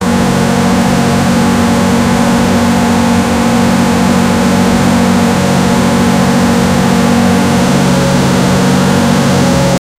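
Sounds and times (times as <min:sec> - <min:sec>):
Airbus A380 aircraft engine growling: 0:00.0 - 0:09.8.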